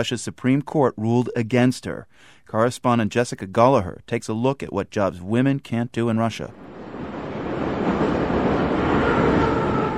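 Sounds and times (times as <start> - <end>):
speech: 0.0 - 6.8
Moscow metro train rumbling along at speed: 6.5 - 9.9.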